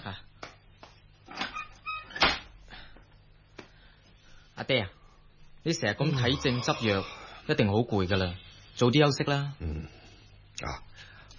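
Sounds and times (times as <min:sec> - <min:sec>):
door creaking squeal: 0:01.3 - 0:02.5
speech: 0:04.7 - 0:05.0, 0:05.6 - 0:10.0, 0:10.6 - 0:11.1.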